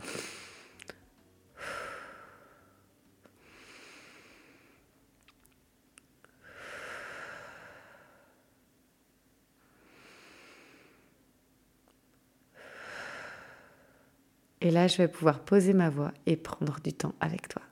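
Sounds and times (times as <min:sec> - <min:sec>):
slow deep breathing: 0:01.6 - 0:05.0, 0:06.3 - 0:08.5, 0:09.6 - 0:11.2, 0:12.5 - 0:14.2
speech: 0:14.6 - 0:17.7.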